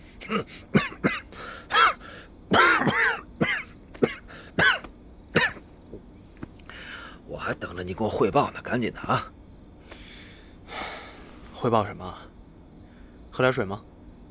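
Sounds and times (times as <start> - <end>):
person coughing in winter: 0.2 - 5.6
throat clearing: 0.2 - 5.6
speech: 0.3 - 1.0, 7.8 - 9.4, 11.6 - 12.3, 13.4 - 13.9.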